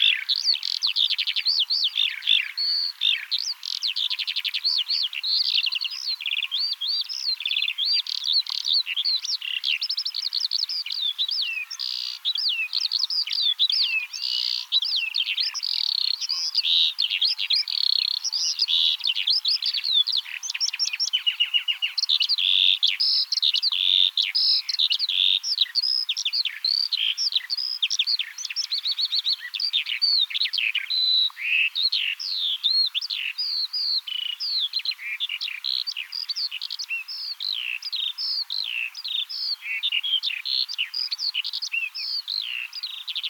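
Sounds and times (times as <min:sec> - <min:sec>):
Eurasian skylark Alauda arvensis: 0:00.0 - 0:43.2.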